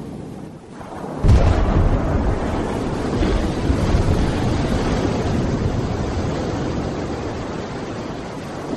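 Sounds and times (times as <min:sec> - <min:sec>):
thermonuclear bomb explosion in US military Castle Bravo test: 0:00.8 - 0:07.3.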